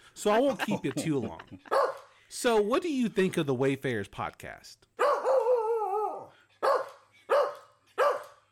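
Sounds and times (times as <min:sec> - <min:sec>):
speech: 0:00.2 - 0:04.9
laughter: 0:00.3 - 0:01.8
Shih Tzu barking: 0:01.7 - 0:02.1, 0:05.0 - 0:05.6, 0:06.6 - 0:08.4.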